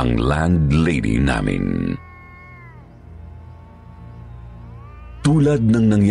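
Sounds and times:
speech: 0:00.0 - 0:02.1, 0:05.3 - 0:06.0
cats wailing at night: 0:01.3 - 0:06.0.

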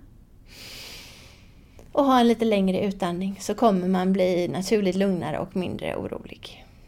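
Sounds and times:
breathing in through the nose: 0:00.5 - 0:01.7
speech: 0:01.9 - 0:06.6.

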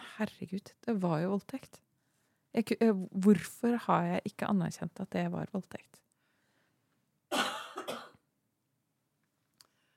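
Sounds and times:
speech: 0:00.2 - 0:01.9, 0:02.5 - 0:06.0
emotional cough: 0:07.3 - 0:08.2.

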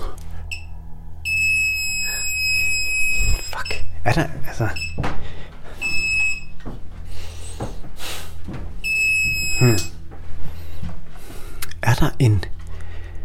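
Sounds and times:
low rumble: 0:00.0 - 0:13.2
steady piercing electronic tone of a bug detector: 0:00.0 - 0:13.2
bug detector beeping against a wall: 0:00.5 - 0:04.0, 0:04.6 - 0:05.0, 0:05.8 - 0:06.6, 0:08.8 - 0:10.0
speech: 0:04.0 - 0:05.2, 0:09.6 - 0:10.0, 0:12.0 - 0:12.6.

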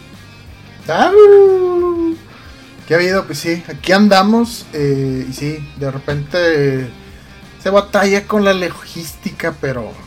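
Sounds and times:
speech: 0:00.9 - 0:01.5, 0:02.9 - 0:07.0, 0:07.6 - 0:10.0
human voice imitating a wolf howl: 0:01.0 - 0:02.2.

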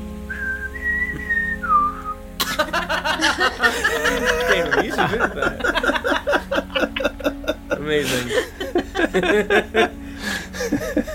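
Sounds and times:
person whistling a warning signal: 0:00.3 - 0:02.2
laughter: 0:02.4 - 0:11.1
speech: 0:03.0 - 0:06.0, 0:07.9 - 0:10.0.

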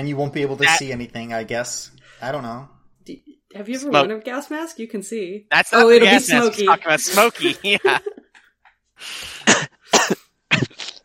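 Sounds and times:
speech: 0:00.0 - 0:08.1
breathy lead-in before coughing: 0:02.0 - 0:02.3, 0:09.0 - 0:09.5
laughter: 0:05.8 - 0:08.4
person coughing in harsh raspy bursts: 0:09.4 - 0:11.0.

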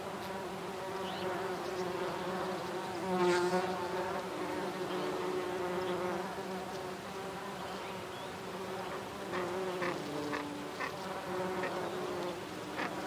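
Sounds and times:
bees buzzing while foraging in Wood Sage on Sugarloaf Hill, Malvern Hills, UK: 0:00.0 - 0:13.0.

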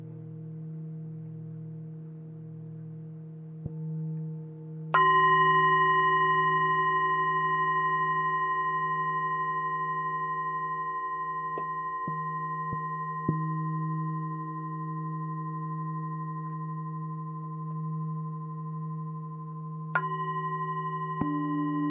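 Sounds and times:
low hum: 0:00.0 - 0:21.8
Tibetan singing bowls ringing: 0:04.9 - 0:21.8.

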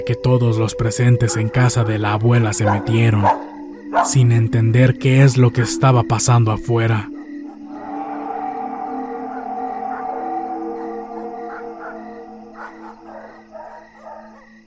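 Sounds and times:
speech: 0:00.0 - 0:07.2
dogs from all the houses howling: 0:00.8 - 0:04.4, 0:07.0 - 0:14.6.

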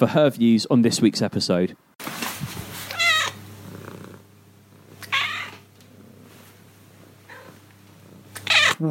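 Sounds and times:
speech: 0:00.0 - 0:01.9
cat meowing: 0:02.9 - 0:03.4, 0:05.0 - 0:05.6, 0:08.4 - 0:08.8
cat purring: 0:03.6 - 0:08.8.

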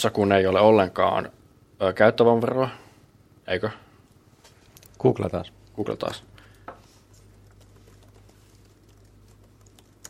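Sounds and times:
speech: 0:00.0 - 0:02.8, 0:03.5 - 0:03.8, 0:05.0 - 0:06.3
low steady hum: 0:00.0 - 0:10.0
typing on computer keyboards: 0:07.4 - 0:10.0.

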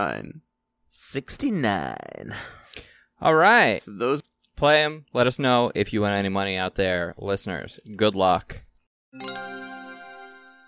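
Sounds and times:
speech: 0:00.0 - 0:09.6
bright bell-like chime: 0:09.2 - 0:10.6.

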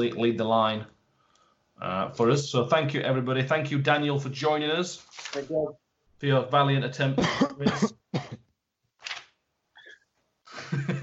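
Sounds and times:
speech: 0:00.0 - 0:01.0, 0:01.8 - 0:08.4
harsh chesty coughs over a phone line: 0:07.2 - 0:08.5.

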